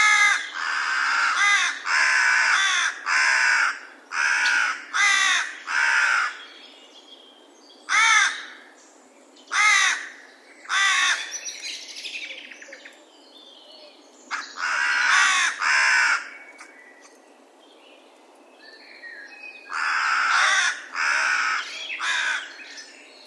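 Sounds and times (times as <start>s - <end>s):
Corvus corone carrion crow cawing: 0.0s - 6.4s, 7.9s - 8.6s, 9.5s - 11.3s, 14.3s - 16.3s, 19.7s - 22.6s.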